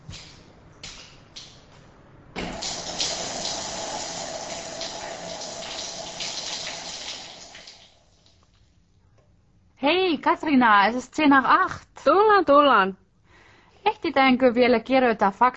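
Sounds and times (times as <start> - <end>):
shower water running: 2.4 - 8.5
speech: 9.9 - 13.0, 13.9 - 15.5.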